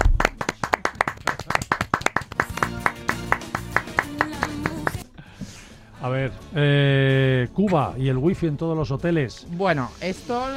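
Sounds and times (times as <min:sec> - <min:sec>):
rhythmic applause for a bar in Seville: 0:00.0 - 0:05.0
speech: 0:06.0 - 0:10.5.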